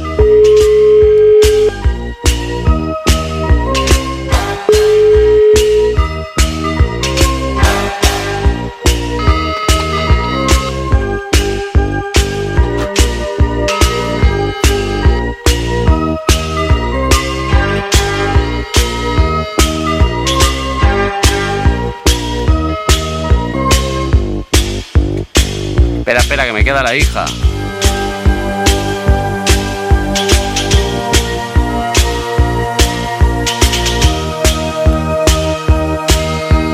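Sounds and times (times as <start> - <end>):
loud driving rhythmic music with sharp repeated beats: 0.0 - 36.7
steady telephone ringback tone: 0.1 - 1.8, 4.7 - 6.0, 9.2 - 10.8, 13.7 - 15.3.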